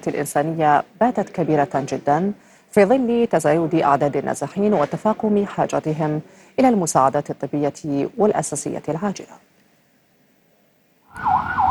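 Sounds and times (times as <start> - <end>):
speech: 0.0 - 9.5
ambulance siren wailing in the streets of Sidon, southern Lebanon: 11.1 - 11.6.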